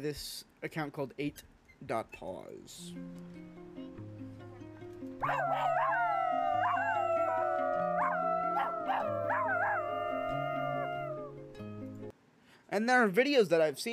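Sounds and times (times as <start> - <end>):
speech: 0.0 - 4.1, 5.2 - 6.1, 12.7 - 13.9
person howling like a wolf: 5.2 - 11.4.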